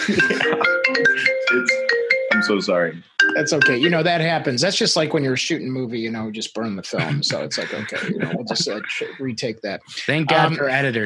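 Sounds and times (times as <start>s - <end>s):
speech: 0.0s - 0.6s, 2.5s - 11.0s
laughter: 0.0s - 1.6s, 3.7s - 11.0s
phone ringtone playing a bright electronic melody: 0.0s - 4.1s.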